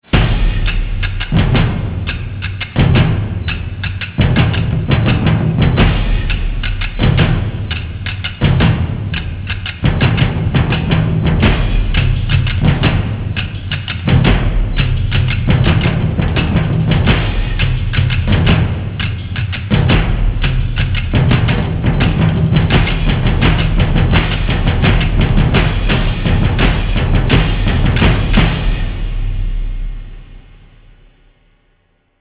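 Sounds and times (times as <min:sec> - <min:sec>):
war drums: 0:00.0 - 0:31.3.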